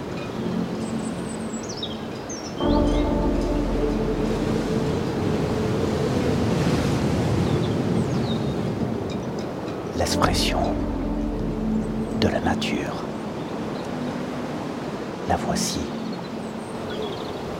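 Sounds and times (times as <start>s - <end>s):
ocean swell and waves roaring: 0.0s - 17.5s
speech: 10.1s - 10.6s.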